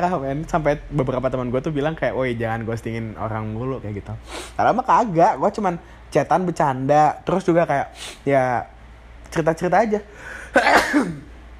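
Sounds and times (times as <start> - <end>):
speech: 0.0 - 11.3
person sneezing: 10.4 - 11.3.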